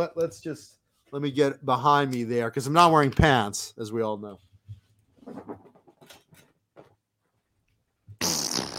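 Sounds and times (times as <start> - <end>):
speech: 0.0 - 4.5
loud sputtering fart: 8.2 - 8.7.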